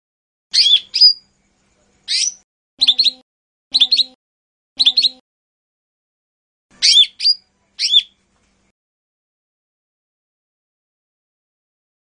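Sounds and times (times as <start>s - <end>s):
lesser green leafbird song: 0.5s - 4.2s, 4.8s - 5.2s, 6.7s - 8.2s.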